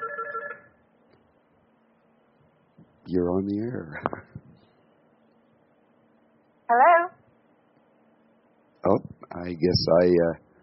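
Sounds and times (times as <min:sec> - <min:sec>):
electronic telephone ringing with an incoming call: 0:00.0 - 0:00.7
speech: 0:03.1 - 0:04.3, 0:09.5 - 0:10.4.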